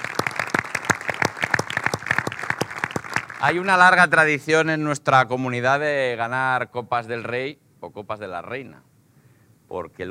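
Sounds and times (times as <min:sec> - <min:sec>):
audience applause at an event honoring a volleyball team: 0:00.0 - 0:04.0
speech: 0:03.4 - 0:08.9, 0:09.7 - 0:10.0.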